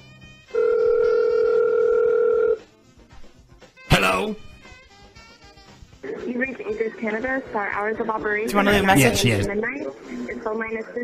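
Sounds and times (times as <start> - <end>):
telephone line ringing on a call: 0.5 - 2.6
speech: 6.4 - 11.0.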